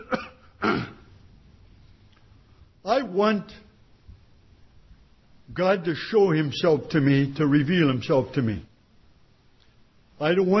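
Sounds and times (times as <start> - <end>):
person with sinus trouble clearing throat: 0.0 - 1.1
speech: 3.0 - 3.6, 5.6 - 8.7, 10.2 - 10.5.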